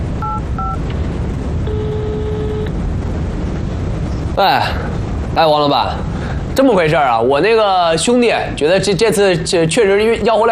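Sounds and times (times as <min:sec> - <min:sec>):
steady rumble of traffic noise: 0:00.0 - 0:10.4
sustained telephone dial tone: 0:00.2 - 0:00.8, 0:01.7 - 0:02.7
telephone keypad dialing tones: 0:00.2 - 0:00.8
speech: 0:04.4 - 0:10.4.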